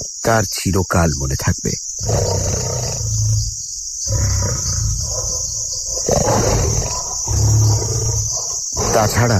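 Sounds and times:
speech: 0:00.2 - 0:02.7, 0:09.0 - 0:09.3
huge lion roaring at night: 0:02.0 - 0:09.3.

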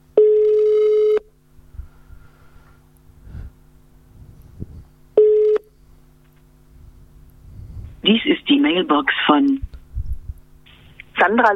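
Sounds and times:
ringback tone of an outgoing telephone call: 0:00.2 - 0:01.3, 0:05.2 - 0:05.7
speech: 0:08.1 - 0:09.6, 0:11.2 - 0:11.5.

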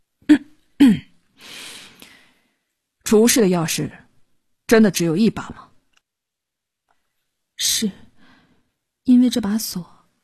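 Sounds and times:
person clearing throat: 0:00.3 - 0:01.1
speech: 0:03.1 - 0:04.0, 0:04.7 - 0:05.7, 0:07.6 - 0:08.0, 0:09.1 - 0:09.9.

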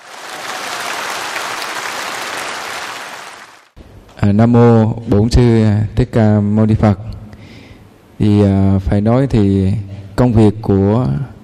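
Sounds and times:
audience applause at a Buddhist gathering: 0:00.0 - 0:03.8
speech: 0:04.2 - 0:07.2, 0:08.2 - 0:11.3.

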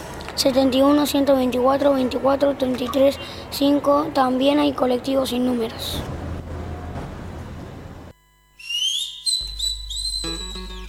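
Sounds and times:
speech: 0:00.4 - 0:06.2
whistling: 0:08.6 - 0:10.8.

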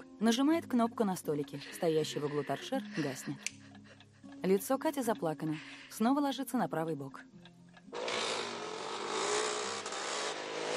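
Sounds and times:
speech: 0:00.2 - 0:03.6, 0:04.4 - 0:07.4
two motorcycles riding past on a road between hedges: 0:08.0 - 0:10.7.

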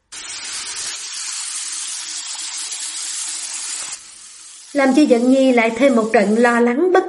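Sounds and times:
shower water gushing in a bathroom: 0:00.0 - 0:06.7
speech: 0:04.7 - 0:07.0.

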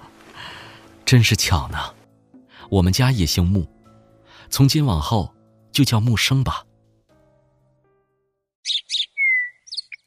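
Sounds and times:
speech: 0:01.1 - 0:02.0, 0:02.7 - 0:03.8, 0:04.5 - 0:06.7
caged bird chirping and whistling: 0:08.6 - 0:10.0.

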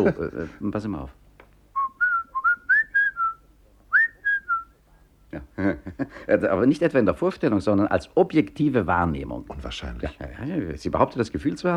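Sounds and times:
speech: 0:00.0 - 0:01.2, 0:05.3 - 0:11.7
person whistling a short tune: 0:01.8 - 0:04.7.

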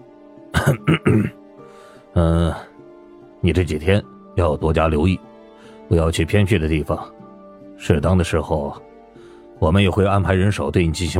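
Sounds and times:
man clearing his throat: 0:00.6 - 0:01.4
speech: 0:00.6 - 0:01.4, 0:02.2 - 0:02.7, 0:03.4 - 0:05.3, 0:05.9 - 0:07.2, 0:07.8 - 0:08.9, 0:09.6 - 0:11.1.

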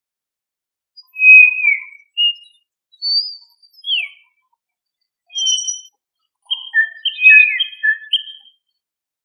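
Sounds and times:
quail whistled calls: 0:01.0 - 0:04.3, 0:05.3 - 0:05.9, 0:06.5 - 0:08.5.

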